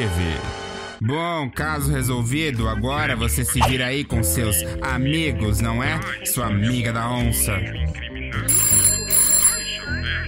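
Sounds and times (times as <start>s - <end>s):
speech: 0.0s - 8.6s
telephone bell ringing: 8.4s - 10.2s.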